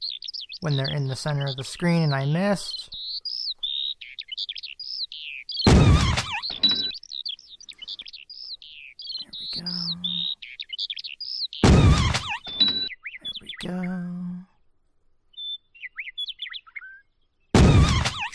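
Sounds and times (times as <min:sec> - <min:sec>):
chirping bird calls from a video game bonus round: 0:00.0 - 0:14.6, 0:15.3 - 0:18.3
speech: 0:00.6 - 0:03.0
video game thumping bursts: 0:05.7 - 0:06.9, 0:11.6 - 0:12.8, 0:17.6 - 0:18.3.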